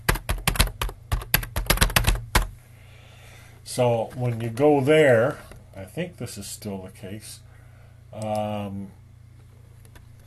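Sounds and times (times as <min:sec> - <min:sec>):
typing on a computer keyboard: 0:00.0 - 0:02.5
speech: 0:03.7 - 0:07.4, 0:08.1 - 0:09.0.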